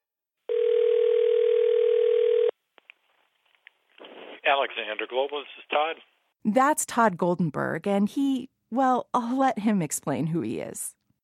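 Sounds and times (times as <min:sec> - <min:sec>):
telephone dial tone: 0:00.5 - 0:02.5
speech: 0:04.5 - 0:11.0.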